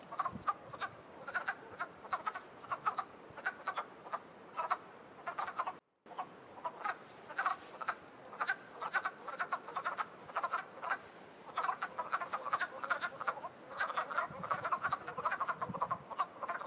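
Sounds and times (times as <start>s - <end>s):
wood frogs calling: 0.1s - 16.6s.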